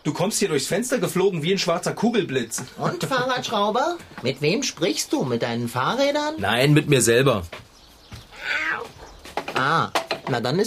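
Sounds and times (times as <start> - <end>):
speech: 0.0 - 7.6, 9.6 - 10.6
black tomcat meowing: 8.3 - 9.0.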